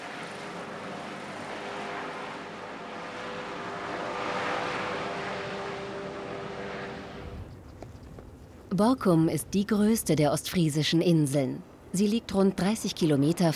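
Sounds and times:
aircraft carrying a heart patient from Borkum, engine drone with tonal whine: 0.0s - 7.9s
speech: 8.8s - 13.5s.

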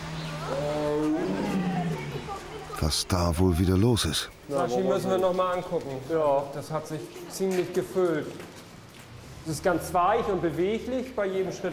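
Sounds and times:
tiger roaring: 0.4s - 2.4s
speech: 2.8s - 8.5s, 9.5s - 11.7s.

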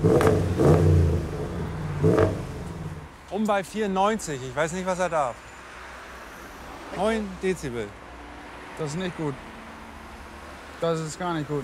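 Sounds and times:
speech: 0.0s - 0.6s, 3.4s - 5.5s, 6.9s - 8.0s, 8.8s - 9.5s, 10.8s - 11.6s
car engine revving during exhaust noise test: 0.0s - 3.2s.

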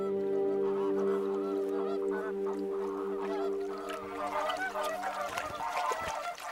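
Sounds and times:
steady low drone: 0.0s - 4.9s
large flock of flamingos honking: 0.0s - 6.5s.

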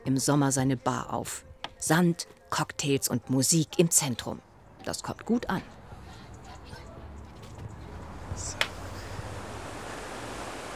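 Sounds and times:
speech: 0.1s - 5.8s
water pouring over a weir: 8.6s - 10.7s.

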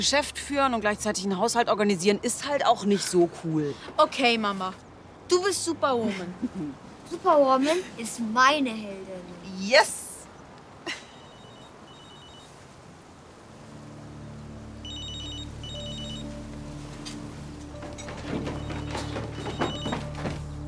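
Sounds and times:
speech: 0.0s - 10.0s
telephone ringing in short trilling bursts: 11.1s - 12.6s, 14.8s - 16.5s, 18.2s - 20.4s
thumps and clatter in the room: 17.0s - 20.6s.

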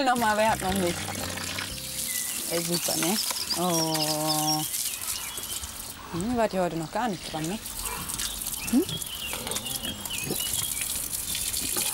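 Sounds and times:
speech: 0.0s - 1.2s, 2.5s - 4.8s, 6.1s - 7.8s, 8.7s - 9.1s
pig grunting: 7.9s - 10.6s.

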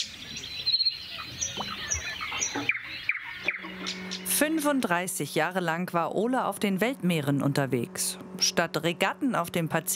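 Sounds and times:
nightingale singing at dawn in quiet countryside: 0.0s - 4.3s
speech: 4.4s - 9.9s.

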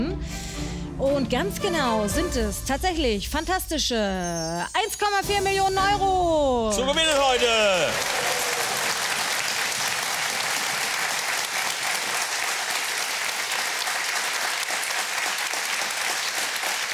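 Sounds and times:
speech: 1.0s - 8.3s
large crowd applauding: 6.8s - 16.9s.

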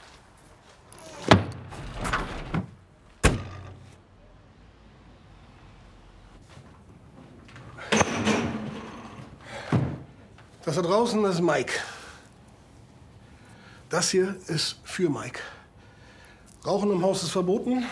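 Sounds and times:
coffin and car doors slamming shut: 1.0s - 4.0s, 7.8s - 10.1s
speech: 10.7s - 11.9s, 13.9s - 15.6s, 16.6s - 17.9s.

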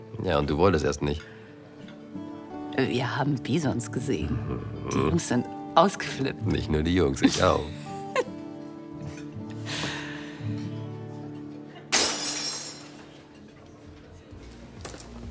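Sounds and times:
speech: 0.2s - 1.4s, 2.8s - 7.8s
cup shards tinkling: 11.9s - 13.1s
dropped cup shattering on the floor: 11.9s - 13.1s.

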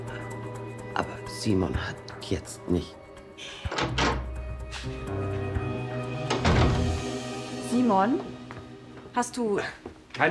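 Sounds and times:
speech: 1.0s - 5.5s, 7.7s - 8.3s, 9.1s - 10.3s
heavy wooden stable door pulled open with knocking thuds and creaking drag: 3.7s - 4.4s, 6.2s - 7.1s.

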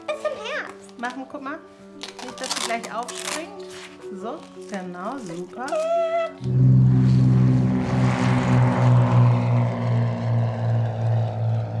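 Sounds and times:
speech: 1.0s - 6.7s
small propeller plane engine droning in flight: 6.3s - 11.7s.

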